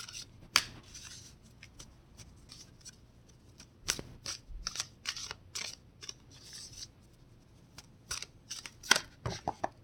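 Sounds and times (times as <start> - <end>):
deck of tarot cards being shuffled: 0.0 - 9.5.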